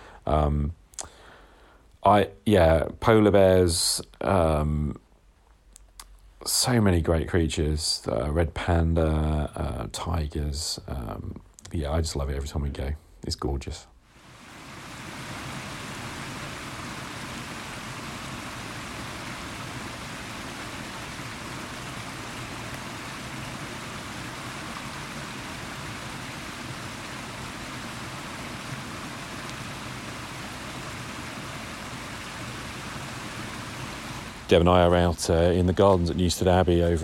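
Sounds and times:
light rain falling outdoors in the gardens at Newstead Abbey in Nottinghamshire: 0.0s - 12.7s, 14.0s - 37.0s
speech: 0.3s - 0.8s, 2.0s - 5.0s, 6.4s - 13.9s, 34.5s - 37.0s.

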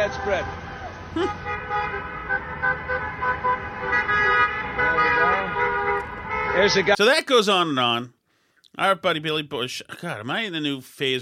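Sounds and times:
speech: 0.0s - 4.4s, 6.6s - 11.2s
car horns honking in a rally parade: 0.0s - 7.0s
vehicles passing in a rally parade: 0.0s - 7.0s.

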